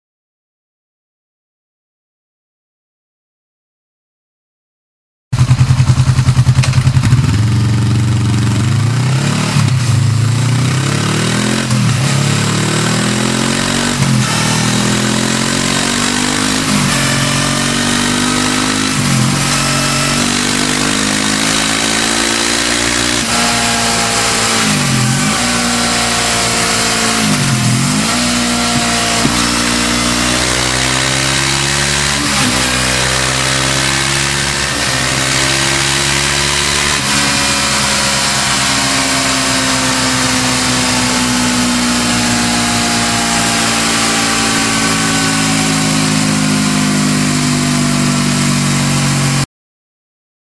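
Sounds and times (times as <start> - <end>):
Honda CB500F motorcycle: 5.4 - 49.5.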